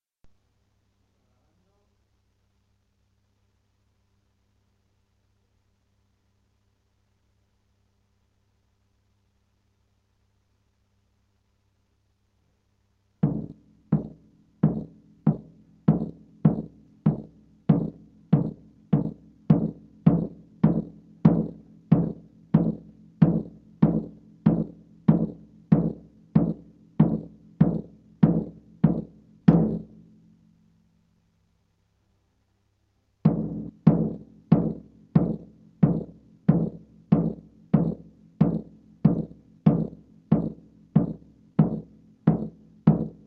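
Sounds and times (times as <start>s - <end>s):
bass drum: 13.2s - 30.0s, 33.3s - 43.2s.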